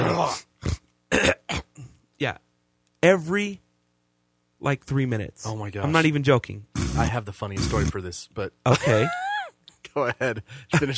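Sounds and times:
man clearing his throat in harsh phlegmy hawking bursts: 0.0 - 2.0
speech: 0.3 - 0.5, 2.2 - 2.4, 3.0 - 3.6, 4.6 - 9.3, 10.0 - 10.9.

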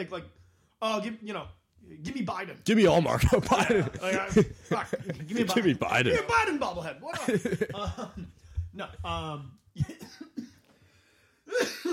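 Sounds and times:
speech: 0.0 - 10.2
laughter: 3.0 - 8.6
harsh coughs: 9.8 - 10.7, 11.5 - 11.9.

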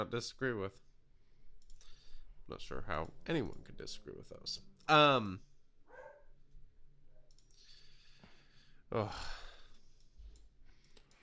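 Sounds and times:
speech: 0.0 - 0.9, 2.5 - 5.5, 8.9 - 9.4
dogs barking and yelping outdoors: 5.9 - 6.3.

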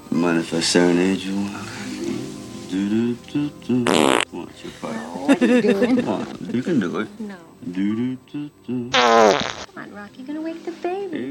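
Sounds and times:
speech: 0.2 - 1.8, 2.7 - 11.2
fart with buzzy toots and a raspy blast: 3.8 - 4.3, 8.9 - 9.7
laughter: 4.6 - 7.1.

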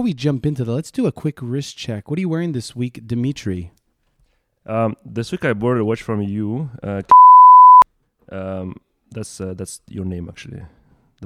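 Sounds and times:
speech: 0.0 - 3.8, 4.7 - 7.3, 8.3 - 11.2
mid-pitched censor bleep covering a spoken name: 7.1 - 7.8.

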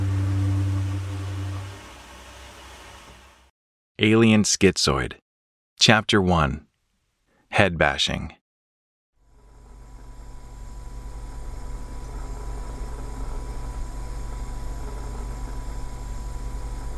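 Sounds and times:
noisy bathroom exhaust fan whirring: 0.0 - 3.4, 9.3 - 16.9
speech: 4.0 - 5.2, 5.8 - 6.7, 7.5 - 8.4.

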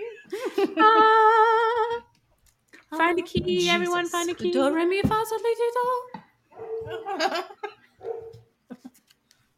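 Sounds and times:
speech: 0.6 - 1.1, 3.1 - 6.1, 6.9 - 7.5
guard dog barking: 6.5 - 7.1, 8.0 - 8.5.

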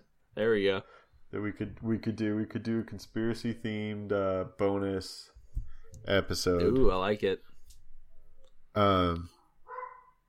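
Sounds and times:
speech: 0.4 - 5.3, 6.0 - 7.5, 8.8 - 9.4
dog barking: 9.6 - 10.2.

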